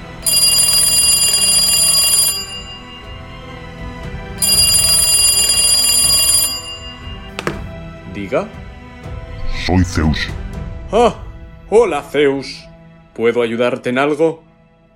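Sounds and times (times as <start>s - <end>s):
telephone ringing in bright electronic bursts: 0.0s - 3.4s, 4.4s - 7.7s
speech: 8.3s - 8.6s, 9.6s - 14.4s.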